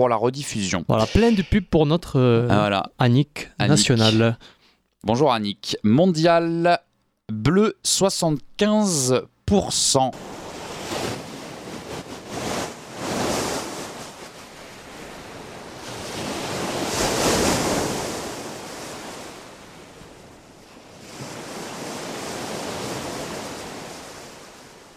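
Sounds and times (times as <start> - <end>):
speech: 0.0 - 10.4
ocean waves breaking on the shore: 10.2 - 24.9.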